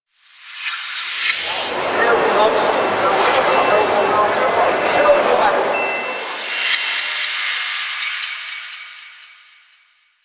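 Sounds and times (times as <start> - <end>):
eerie echoing ambience: 1.3 - 8.7.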